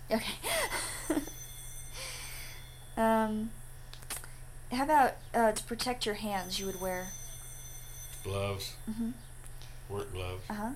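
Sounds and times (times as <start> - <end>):
quiet room noise: 0.0 - 10.7
speech: 0.1 - 1.3, 3.0 - 3.6, 4.7 - 7.2, 8.2 - 9.3, 9.9 - 10.7
telephone ringing with a short electronic tone: 0.7 - 3.0, 6.3 - 8.9.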